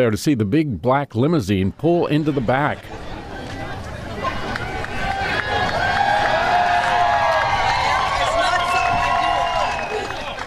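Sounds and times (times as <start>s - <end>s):
speech: 0.0s - 3.0s
crowd chatter while waiting in line: 2.2s - 10.4s.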